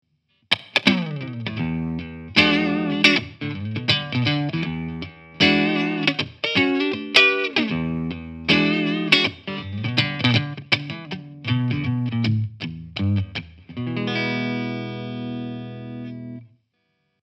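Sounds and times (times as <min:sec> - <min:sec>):
Mesa Boogie Fillmore 50 combo amplifier clean tone: 0:00.6 - 0:16.5.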